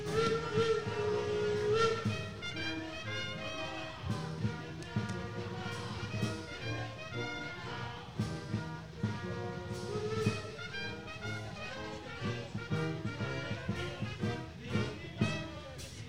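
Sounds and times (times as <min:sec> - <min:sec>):
steam train whistle: 0:00.0 - 0:08.4, 0:09.0 - 0:15.5.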